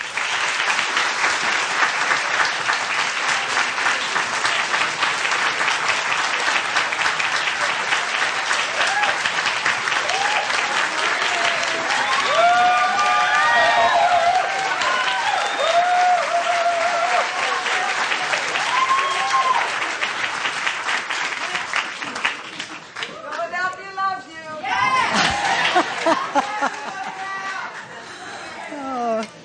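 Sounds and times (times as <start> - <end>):
large audience applauding a guest speaker: 0.0 - 23.5, 24.7 - 28.1
audience cheers and whoops: 8.7 - 9.3, 9.9 - 19.9, 24.6 - 27.7
laughter: 24.9 - 29.2.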